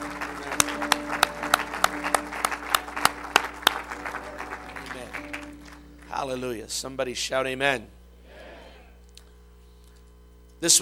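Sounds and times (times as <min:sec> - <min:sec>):
faint crowd murmur: 0:00.0 - 0:05.9
audience clapping together in a steady rhythm: 0:00.0 - 0:06.6
speech: 0:06.2 - 0:08.0.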